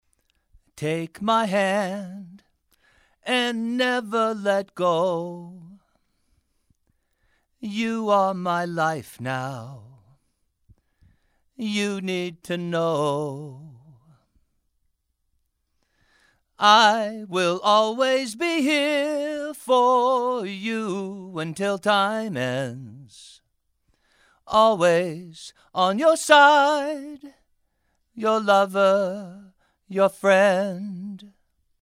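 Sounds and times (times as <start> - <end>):
male vocals: 0.7 - 2.5, 3.2 - 5.9, 7.6 - 10.2, 11.6 - 14.2, 16.6 - 23.4, 24.5 - 27.4, 28.2 - 31.4.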